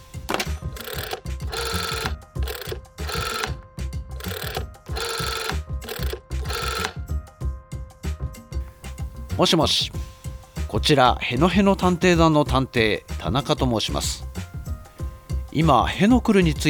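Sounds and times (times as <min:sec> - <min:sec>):
telephone ringing during an outgoing call: 0:00.0 - 0:07.0
speech: 0:09.4 - 0:10.0, 0:10.8 - 0:14.2, 0:15.6 - 0:16.6.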